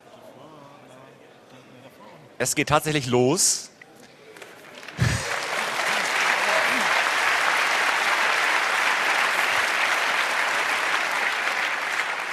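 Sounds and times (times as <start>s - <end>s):
speech: 2.4s - 3.7s
audience applause: 4.6s - 12.3s.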